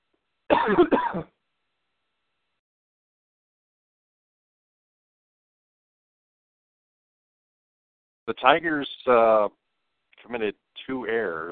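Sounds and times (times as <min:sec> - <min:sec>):
person clearing throat: 0:00.5 - 0:01.3
person coughing: 0:00.5 - 0:01.3
speech: 0:00.6 - 0:01.3, 0:08.3 - 0:09.6, 0:10.2 - 0:11.5.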